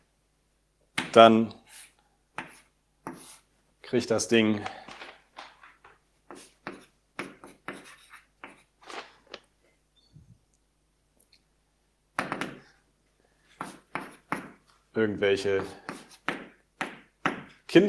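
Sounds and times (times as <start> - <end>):
handwriting during a maths lecture: 1.0 - 3.5, 6.3 - 8.8, 12.2 - 12.7, 13.5 - 14.8, 15.6 - 17.7
speech: 1.2 - 1.6, 3.9 - 4.8, 15.0 - 15.9.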